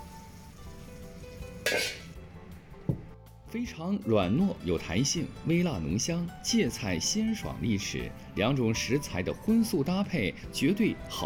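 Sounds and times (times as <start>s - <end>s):
food sizzling in a hot wok: 0.0s - 2.2s
metal spatula scraping and clanking against a wok: 1.6s - 2.2s
speech: 1.7s - 2.0s, 3.5s - 11.2s.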